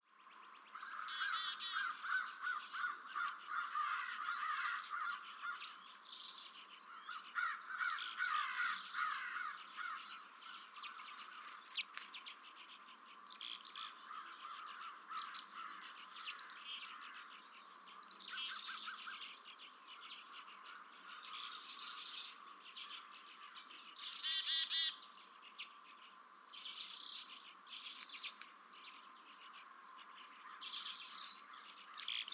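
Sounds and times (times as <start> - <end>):
Black-capped Chickadees calling: 0.2 - 32.3
American Crows cawing: 0.7 - 5.8, 6.9 - 11.6, 13.7 - 17.4, 24.2 - 25.0, 29.8 - 31.7.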